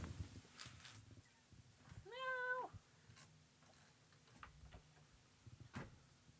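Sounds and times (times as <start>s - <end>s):
cat meowing at the window: 2.0s - 2.8s.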